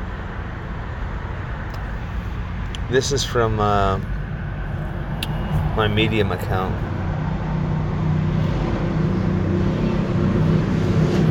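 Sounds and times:
loud road traffic with engines and tires: 0.0 - 11.2
speech: 2.9 - 4.2, 5.8 - 6.9.

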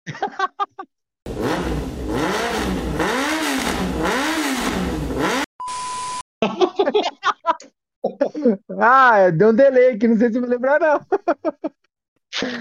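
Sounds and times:
laughter: 0.1 - 0.9, 6.4 - 8.8, 10.9 - 11.8, 12.4 - 12.6
voice imitating a motorcycle revving loudly: 1.3 - 5.5
brief steady beep: 5.6 - 6.2
speech: 8.5 - 12.6.

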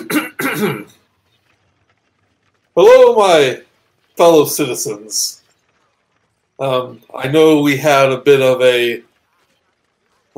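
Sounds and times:
man clearing his throat: 0.0 - 1.0
speech: 0.6 - 1.0, 2.8 - 5.4, 6.6 - 9.1.

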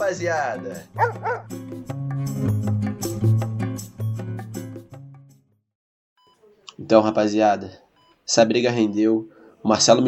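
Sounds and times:
speech: 0.1 - 2.9, 6.9 - 10.0
steady tonal music: 0.5 - 5.3
small dog yipping: 1.0 - 1.5.

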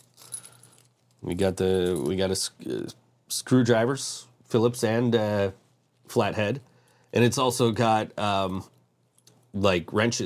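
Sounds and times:
keys jingling while being handled: 0.0 - 1.2
speech: 1.2 - 8.8, 9.5 - 10.2.

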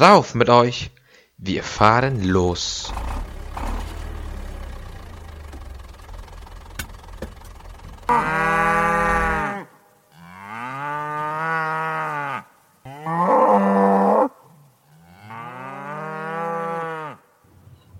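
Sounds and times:
speech: 0.0 - 3.7, 8.1 - 8.5
cows mooing in the countryside: 8.1 - 17.3.

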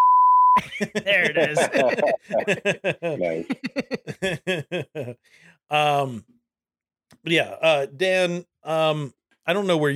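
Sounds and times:
censor bleep tone: 0.0 - 0.6
laughter: 0.6 - 5.2
speech: 0.6 - 6.4, 7.2 - 9.9.

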